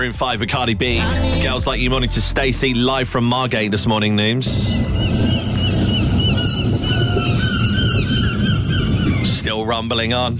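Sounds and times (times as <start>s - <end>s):
speech: 0.1s - 5.5s, 9.5s - 10.3s
seagulls calling in agitated squawks: 4.5s - 9.9s
steady low rumble of wind: 4.5s - 10.3s.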